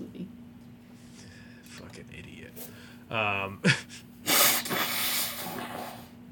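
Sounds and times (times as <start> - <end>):
faint hum: 0.0 - 6.3
speech: 2.1 - 3.9
person blowing their nose: 4.2 - 6.2.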